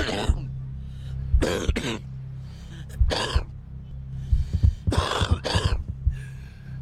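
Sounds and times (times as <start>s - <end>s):
smoker's harsh raspy hacking cough with throaty rattles: 0.0s - 0.5s, 1.4s - 2.1s, 3.0s - 3.5s, 4.9s - 6.0s.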